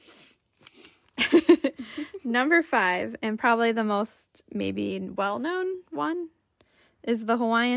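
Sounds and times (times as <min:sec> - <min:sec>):
nose sniffles: 0:00.0 - 0:01.1
speech: 0:02.3 - 0:06.4, 0:07.0 - 0:07.7.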